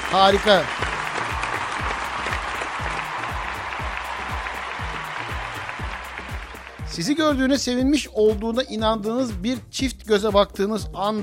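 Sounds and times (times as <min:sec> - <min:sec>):
crowd applause: 0:00.0 - 0:07.0
regular low thumping beat: 0:00.0 - 0:11.1
speech: 0:00.1 - 0:00.8, 0:07.0 - 0:11.2.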